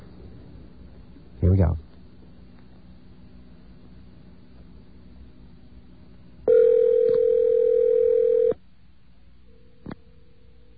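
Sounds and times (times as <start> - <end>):
speech: 1.4 - 1.9
unanswered telephone electronic ring tone: 6.5 - 8.6.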